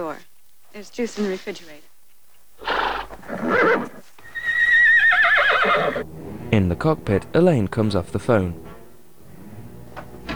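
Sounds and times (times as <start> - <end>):
speech: 0.0 - 1.9, 3.2 - 4.0, 5.7 - 8.6
horse neighing: 2.6 - 6.1.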